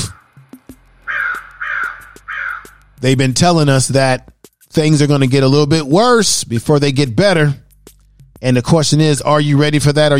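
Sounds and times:
crows cawing: 0:00.0 - 0:00.3, 0:01.0 - 0:03.0
speech: 0:03.0 - 0:07.6, 0:08.4 - 0:10.1.

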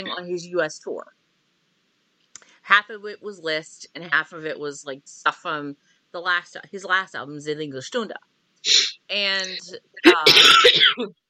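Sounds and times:
speech: 0:00.0 - 0:01.2, 0:02.6 - 0:11.2
person sneezing: 0:08.7 - 0:09.0, 0:10.1 - 0:11.0.

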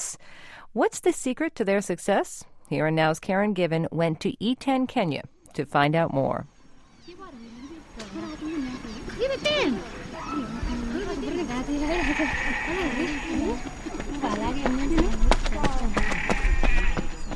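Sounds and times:
speech: 0:00.7 - 0:06.5, 0:09.2 - 0:10.4, 0:11.2 - 0:16.1
goats bleating while grazing: 0:08.8 - 0:15.2, 0:15.8 - 0:17.3.

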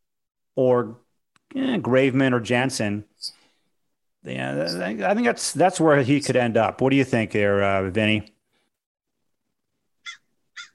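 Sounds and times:
speech: 0:00.6 - 0:03.4, 0:04.2 - 0:08.3
crow or raven cawing harshly: 0:10.0 - 0:10.7.

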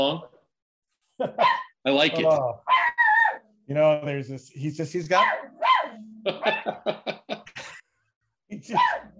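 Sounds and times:
speech: 0:00.0 - 0:00.3, 0:01.2 - 0:02.8, 0:03.7 - 0:05.5, 0:06.2 - 0:07.4, 0:08.5 - 0:09.1
small dog barking at another dog outside the window: 0:01.4 - 0:01.7, 0:05.2 - 0:06.0, 0:08.8 - 0:09.1
laughter: 0:06.2 - 0:07.8.

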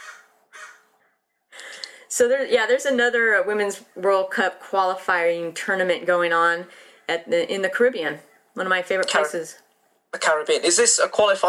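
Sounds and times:
crow cawing in a backyard: 0:00.0 - 0:01.1
speech: 0:02.2 - 0:11.4.

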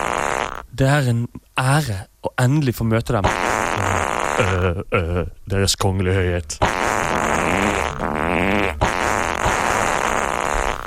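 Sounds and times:
loud buzzy fart sound effect: 0:00.0 - 0:00.6, 0:03.2 - 0:04.8, 0:06.6 - 0:10.8
speech: 0:00.8 - 0:07.7, 0:08.4 - 0:08.8.

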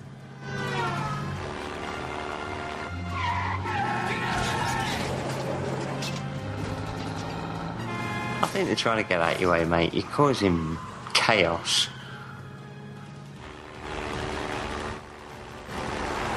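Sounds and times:
video game car engine roaring: 0:00.0 - 0:16.3
video game car tyres screeching: 0:00.3 - 0:13.3
speech: 0:08.6 - 0:12.0.

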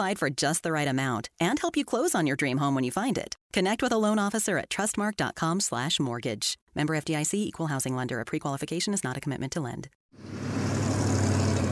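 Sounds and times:
speech: 0:00.0 - 0:10.6
rush-hour road traffic: 0:10.2 - 0:11.7.

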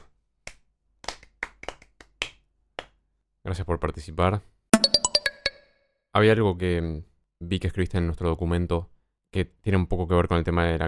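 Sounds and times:
hands clapping: 0:00.0 - 0:03.0
speech: 0:03.5 - 0:05.0, 0:06.2 - 0:10.8.

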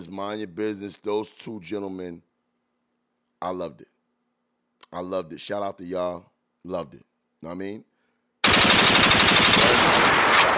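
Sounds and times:
speech: 0:00.0 - 0:02.3, 0:03.4 - 0:03.9, 0:04.9 - 0:07.9
rapid burst of automatic gunfire: 0:08.4 - 0:10.5.

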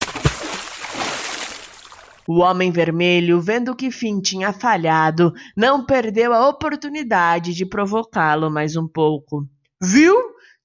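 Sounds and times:
large object splashing into the sea: 0:00.0 - 0:02.3
speech: 0:02.3 - 0:10.3.

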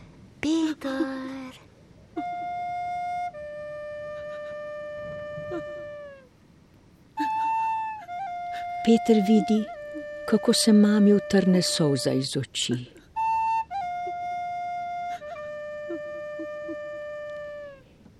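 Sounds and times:
slow lullaby tune played on a pipe: 0:02.2 - 0:06.3, 0:07.2 - 0:12.4, 0:13.0 - 0:17.9
speech: 0:08.8 - 0:09.7, 0:10.3 - 0:13.0.

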